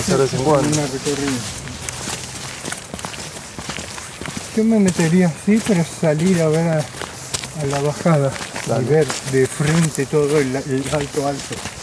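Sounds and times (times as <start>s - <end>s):
speech: 0.0s - 1.7s, 4.6s - 7.0s, 7.6s - 11.8s
horse hooves clopping along a path: 0.0s - 11.8s.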